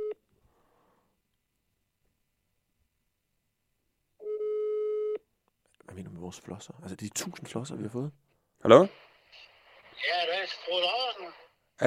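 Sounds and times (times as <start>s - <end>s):
phone call ringing tone on speakerphone: 4.2s - 5.2s
speech: 6.0s - 11.8s.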